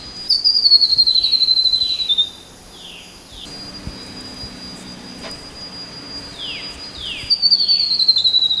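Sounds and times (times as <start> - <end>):
steady insect drone: 0.0 - 8.5
grey-throated babbler trilling: 0.3 - 8.5.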